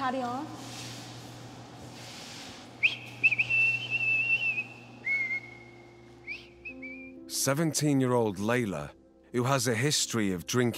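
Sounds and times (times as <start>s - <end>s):
low steady hum: 0.0s - 7.1s
speech: 0.1s - 0.8s, 7.3s - 10.7s
person whistling a wavering high-pitched tune: 2.8s - 7.2s.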